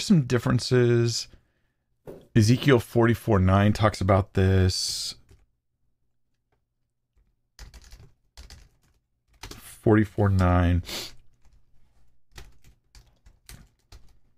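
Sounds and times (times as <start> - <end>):
speech: 0.0 - 1.4, 2.4 - 5.2, 9.8 - 11.1
computer keyboard typing: 7.2 - 10.6, 11.2 - 14.3.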